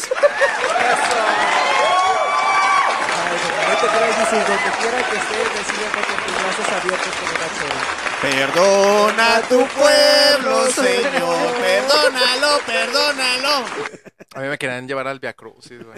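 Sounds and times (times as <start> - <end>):
laughter: 0.0 - 1.8, 3.1 - 6.9, 8.2 - 14.6, 15.5 - 15.9
crowd shouting and whooping: 0.0 - 6.0, 8.2 - 14.0
crowd clapping: 0.0 - 14.4
speech: 4.3 - 15.9.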